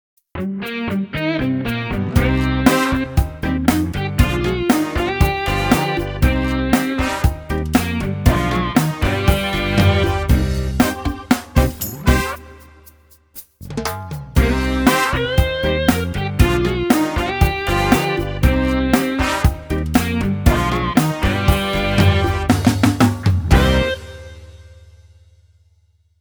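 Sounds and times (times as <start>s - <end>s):
Latin rock music: 0.4s - 13.2s, 13.8s - 24.8s.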